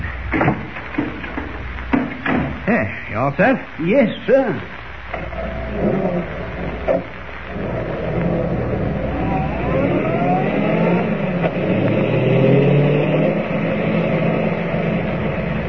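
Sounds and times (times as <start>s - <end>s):
thump: 0.3s - 2.6s
speech: 2.7s - 5.2s
car engine accelerating and shifting while driving: 5.3s - 15.6s.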